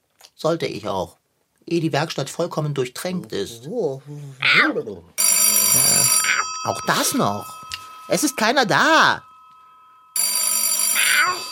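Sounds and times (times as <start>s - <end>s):
speech: 0.4s - 9.3s
telephone bell ringing: 5.2s - 11.5s.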